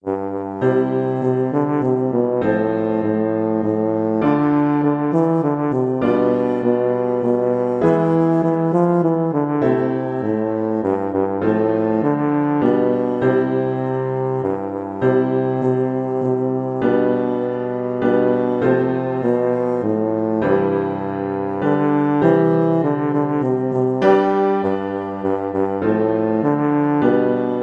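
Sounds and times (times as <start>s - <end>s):
tuba: 0.0s - 27.6s.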